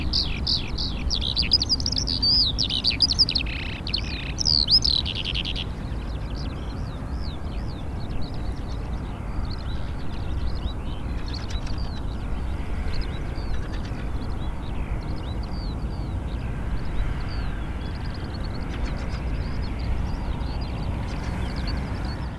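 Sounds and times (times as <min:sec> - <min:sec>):
Eurasian skylark singing over traffic in Taastrup, Denmark: 0:00.0 - 0:22.3
traffic rumble with cars passing in Taastrup, Denmark: 0:00.0 - 0:22.3.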